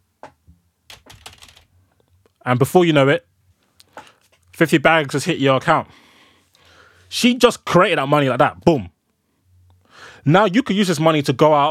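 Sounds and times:
bank teller typing on a computer keyboard at a bank: 0.9 - 1.7
speech: 2.4 - 3.3, 4.6 - 6.0, 7.1 - 8.9, 10.2 - 11.6.

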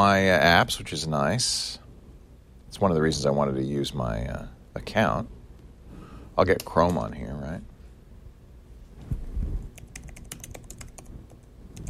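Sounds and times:
speech: 0.0 - 1.8, 2.7 - 5.4, 6.4 - 7.7
typing on a laptop keyboard much like a Mac keyboard: 9.7 - 11.8.

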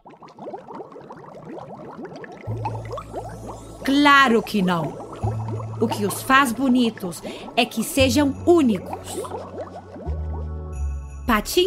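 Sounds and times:
water bubbling and gurgling in a pond: 0.0 - 10.7
speech: 3.8 - 5.0, 5.8 - 9.5, 11.3 - 11.6.

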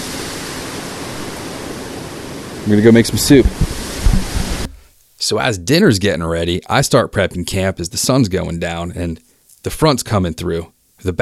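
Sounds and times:
rushing stream water: 0.0 - 4.8
speech: 2.6 - 3.7, 5.3 - 11.2.

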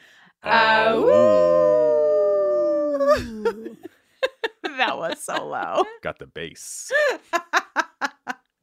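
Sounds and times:
speech: 0.4 - 1.4, 5.0 - 7.4
people imitating wolf yelps: 0.4 - 3.8
people imitating a wolf howl: 0.4 - 3.9
laughter: 3.0 - 6.0, 6.9 - 8.4.

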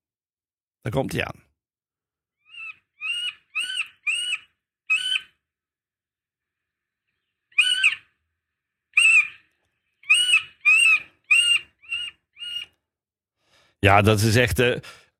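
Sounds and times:
speech: 0.8 - 1.4, 13.8 - 15.1
middle spotted woodpecker nasal squeaky call notes: 2.4 - 5.4, 7.0 - 12.9.

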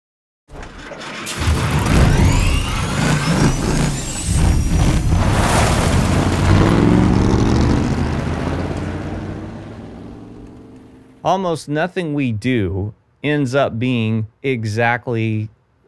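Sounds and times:
sewing-machine-type spin-ups: 0.8 - 5.1
car engine startup rumble: 1.4 - 11.2
rising motor whine: 1.8 - 5.1
speech: 11.2 - 15.6.

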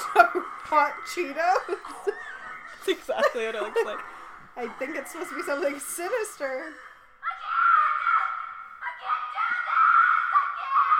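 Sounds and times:
laughter: 0.0 - 5.8
speech: 0.2 - 6.9
person screaming shrilly: 7.2 - 10.9.

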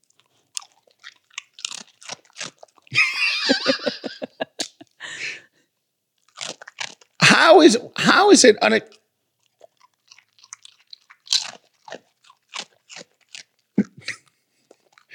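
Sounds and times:
dog crunching a fortune cookie into a microphone: 0.0 - 3.8, 6.2 - 7.2, 8.8 - 15.1
people giggling: 2.9 - 4.9
speech: 7.6 - 9.0.

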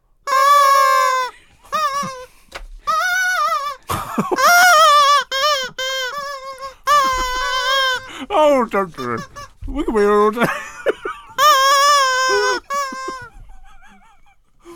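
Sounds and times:
screaming rubber chicken toys squealing, laughed through with heads in a mouth: 0.3 - 8.4, 9.0 - 13.8
laughter: 3.9 - 4.6, 9.0 - 14.7
speech: 4.2 - 4.5, 8.4 - 10.6.

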